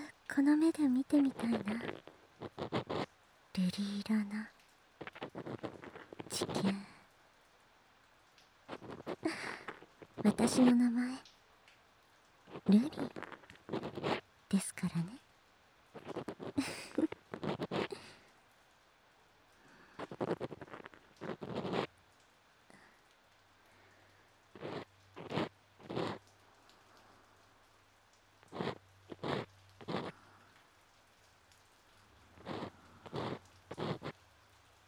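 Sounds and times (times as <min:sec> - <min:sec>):
soft steady rain pattering: 0:00.0 - 0:34.8
speech: 0:00.3 - 0:02.9, 0:03.6 - 0:04.6, 0:05.6 - 0:06.9, 0:10.2 - 0:11.3, 0:12.6 - 0:15.2, 0:16.2 - 0:17.1
crackly scratching of ear cleaning: 0:01.4 - 0:03.1, 0:05.0 - 0:06.7, 0:12.5 - 0:14.2, 0:16.0 - 0:18.0, 0:20.0 - 0:21.9, 0:24.6 - 0:26.2, 0:28.5 - 0:30.1, 0:32.4 - 0:34.2.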